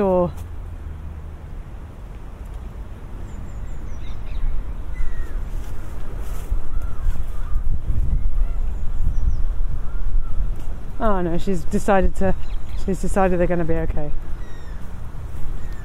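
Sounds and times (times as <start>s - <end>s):
outdoor wind: 0.0s - 15.8s
traffic rumble: 0.0s - 15.8s
bird calls including pigeons on a park common by the water: 3.2s - 10.7s, 12.3s - 13.1s, 14.3s - 15.8s
speech: 11.0s - 14.3s.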